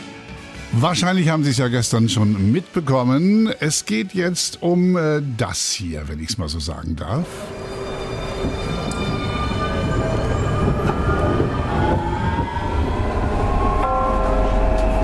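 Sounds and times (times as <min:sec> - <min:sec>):
speech: 0:00.7 - 0:07.6
tram in Bremen rumbling past with rail noise: 0:07.2 - 0:15.0
faint high metallic squeals from tram wheels: 0:07.3 - 0:15.0.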